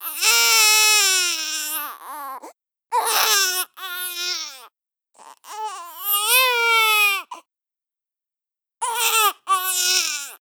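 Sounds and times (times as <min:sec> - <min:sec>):
baby crying: 0:00.0 - 0:07.4, 0:08.8 - 0:10.4.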